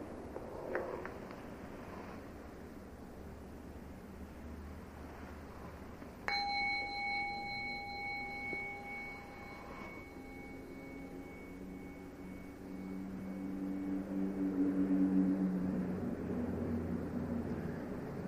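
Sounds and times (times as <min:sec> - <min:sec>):
faint steady low rumble: 0:00.0 - 0:18.2
single bell struck and ringing: 0:06.3 - 0:14.6.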